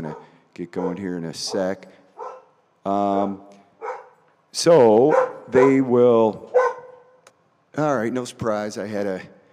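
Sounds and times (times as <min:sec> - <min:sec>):
dogs barking and yelping excitedly: 0:00.0 - 0:02.6, 0:03.8 - 0:04.3, 0:05.0 - 0:07.2
speech: 0:00.6 - 0:02.0, 0:02.8 - 0:03.6, 0:04.5 - 0:06.5, 0:07.8 - 0:09.4.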